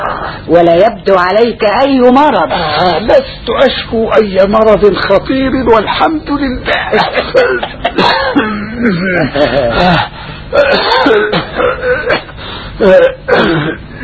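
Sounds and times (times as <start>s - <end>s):
speech: 0.5s - 11.7s, 12.8s - 14.0s
man coughing: 6.6s - 14.0s
man clearing his throat: 7.6s - 14.0s.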